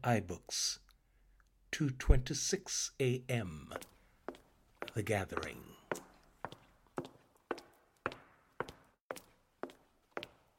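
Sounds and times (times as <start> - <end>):
speech: 0.0 - 0.8, 1.7 - 4.0, 5.0 - 6.0
footsteps walking on a hard surface: 3.7 - 10.5.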